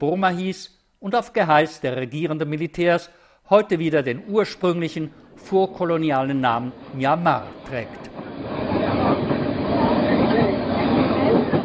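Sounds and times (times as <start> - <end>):
speech: 0.0 - 8.2
train rumbling along railway tracks: 5.3 - 11.6.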